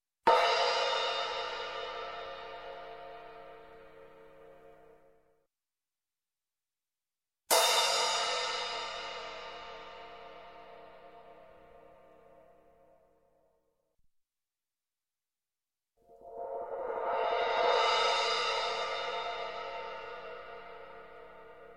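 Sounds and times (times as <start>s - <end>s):
medium size crash cymbal: 0.3s - 4.8s, 7.5s - 11.8s, 16.2s - 21.7s.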